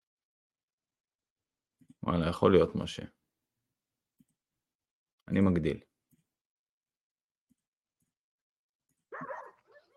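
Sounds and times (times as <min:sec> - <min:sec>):
speech: 0:02.0 - 0:03.2, 0:05.3 - 0:05.9
dog yipping: 0:09.1 - 0:09.9.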